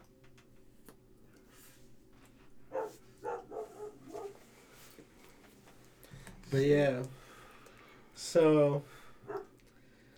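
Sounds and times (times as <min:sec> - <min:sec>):
dog bark: 0:02.7 - 0:04.4, 0:09.3 - 0:09.5
speech: 0:06.5 - 0:07.2, 0:08.2 - 0:09.0.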